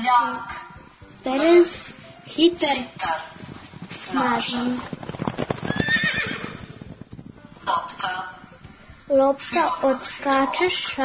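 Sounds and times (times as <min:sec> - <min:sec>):
speech: 0:00.1 - 0:00.6, 0:01.2 - 0:03.3, 0:04.1 - 0:05.0, 0:07.7 - 0:08.4, 0:09.1 - 0:11.0
horse hooves clip-clopping: 0:02.5 - 0:08.9
horse neighing: 0:04.9 - 0:07.2.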